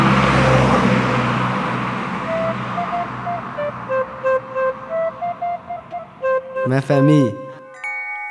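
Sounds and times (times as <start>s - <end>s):
car engine rumbling: 0.0s - 6.7s
traffic noise: 0.0s - 8.0s
car horn honking in short beeps: 2.1s - 7.8s
speech: 6.7s - 7.4s.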